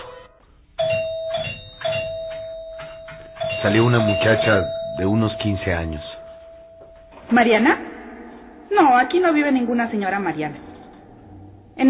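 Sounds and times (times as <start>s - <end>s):
apartment doorbell ringing with a steady electric tone: 0.0s - 7.7s
speech: 3.6s - 6.1s, 7.3s - 7.9s, 8.7s - 10.6s.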